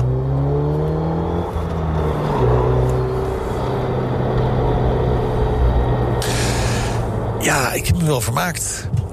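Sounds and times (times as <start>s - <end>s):
Megane Trophy R hot hatch engine revving through the gears on a lap: 0.0s - 8.8s
hissing rush of air or spray: 6.2s - 7.1s
speech: 7.8s - 9.0s.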